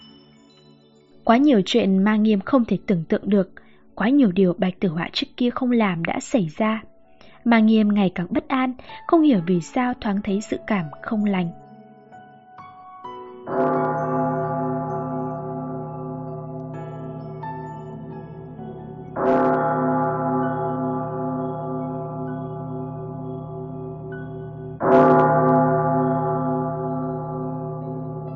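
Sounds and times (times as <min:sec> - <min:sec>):
speech: 0:01.2 - 0:11.6
great hall bell ringing: 0:13.5 - 0:28.3.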